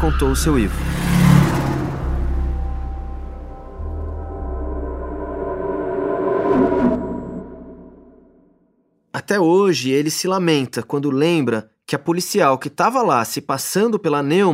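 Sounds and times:
speech: 0.0s - 1.0s, 9.3s - 14.5s
suspect car engine humming and rumbling: 0.0s - 8.4s.

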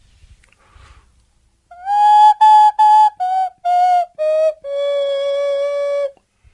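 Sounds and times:
nose whistle over the nose and mouth playing a short tune: 1.7s - 6.2s.

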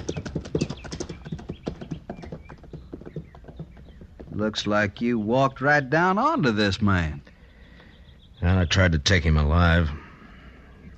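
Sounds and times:
horse hooves clip-clopping: 0.0s - 5.1s
speech: 4.4s - 7.2s, 8.4s - 10.0s.

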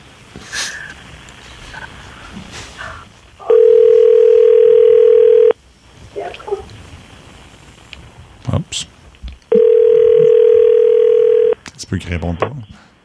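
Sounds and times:
speech: 0.4s - 0.7s, 12.0s - 12.7s
telephone ringing tone while placing a call: 3.4s - 5.6s, 9.5s - 11.6s.

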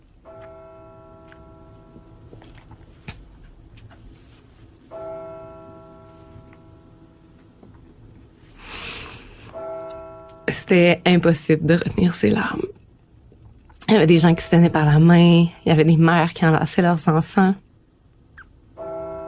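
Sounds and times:
church bells tolling: 0.2s - 2.9s, 4.9s - 7.6s, 9.5s - 12.2s, 14.0s - 15.9s, 18.8s - 19.2s
speech: 10.7s - 12.8s, 13.9s - 17.6s.

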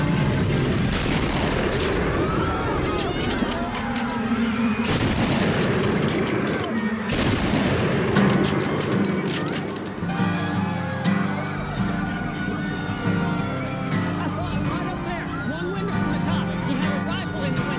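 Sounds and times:
murmur and rumble from the gathered crowd in Dealey Plaza: 0.0s - 17.7s
faint voices: 1.8s - 7.2s, 7.8s - 17.7s
sharp rifle shots in Dealey Plaza, Dallas: 4.7s - 9.6s.

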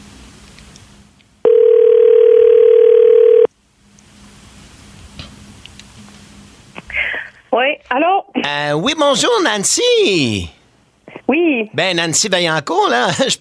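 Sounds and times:
telephone dial tone as a call is placed: 1.4s - 3.5s
speech: 7.6s - 10.6s, 11.3s - 13.4s.

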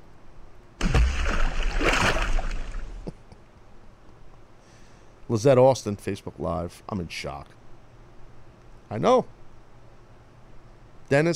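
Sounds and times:
water splash from something plunging into water: 0.8s - 3.1s
speech: 5.3s - 7.6s, 8.9s - 9.4s, 11.1s - 11.3s.

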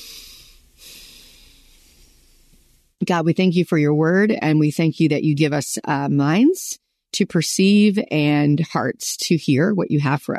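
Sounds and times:
deep breath taken before a prayer: 0.0s - 2.9s
speech: 3.1s - 10.3s.

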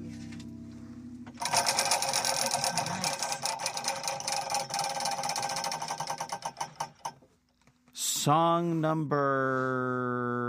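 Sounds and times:
prize wheel spinning and clicking during a game: 1.4s - 7.2s
speech: 8.2s - 10.2s.

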